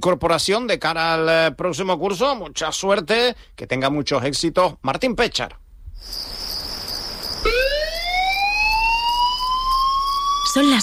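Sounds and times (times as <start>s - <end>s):
speech: 0.0s - 6.4s, 10.6s - 10.8s
faint hiss: 0.0s - 9.0s
fire brigade emergency alert electronic siren tone on Tenerife: 7.2s - 10.8s.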